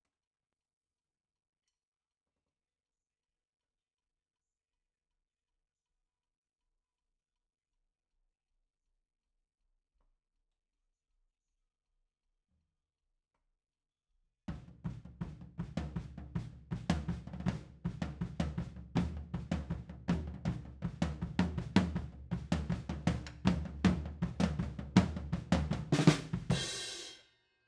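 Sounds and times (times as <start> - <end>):
drum overheads: 14.5 - 27.2.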